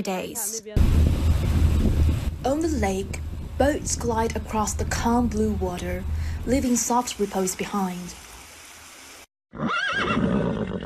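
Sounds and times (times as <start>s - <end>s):
speech: 0.0s - 1.6s, 2.4s - 8.2s
horse whinnying: 9.5s - 10.8s.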